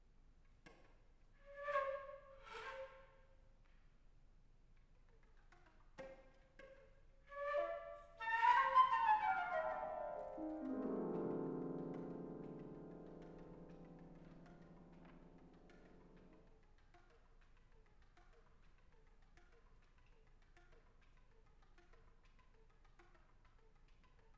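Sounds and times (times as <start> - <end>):
flute: 7.3 - 16.2
piano: 7.6 - 16.4.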